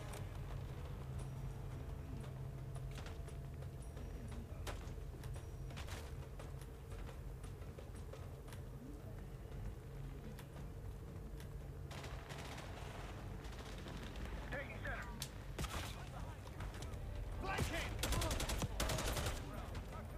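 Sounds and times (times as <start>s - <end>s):
dense rumbling background: 0.0s - 20.1s
video game gunfire shooting through a wall: 11.9s - 14.5s, 17.5s - 19.5s.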